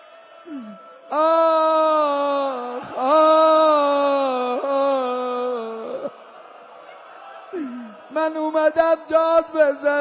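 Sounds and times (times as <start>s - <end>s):
speech: 0.4s - 2.0s, 8.7s - 9.9s
person imitating a crying, wailing child: 1.2s - 6.0s.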